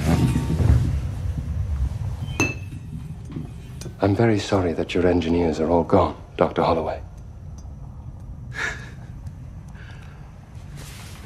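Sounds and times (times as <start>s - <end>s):
steady low rumble of ambience: 0.0s - 11.2s
single bright clink of glass: 2.2s - 2.9s
speech: 4.0s - 7.1s.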